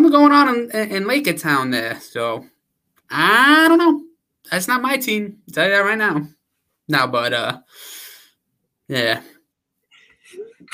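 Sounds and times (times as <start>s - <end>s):
speech: 0.1s - 8.0s, 8.9s - 9.3s
breathy intake: 7.6s - 8.4s.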